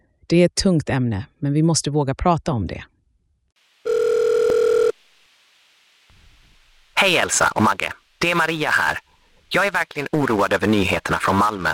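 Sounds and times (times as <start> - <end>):
speech: 0.3 - 2.9, 7.0 - 11.7
faint telephone line hiss: 3.6 - 11.7
electronic telephone ring tone as a caller connects: 3.9 - 5.0.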